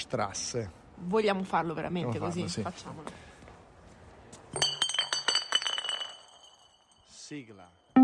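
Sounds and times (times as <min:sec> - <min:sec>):
speech: 0:00.0 - 0:03.3, 0:07.3 - 0:07.8
glass bottles clinking: 0:04.5 - 0:07.9.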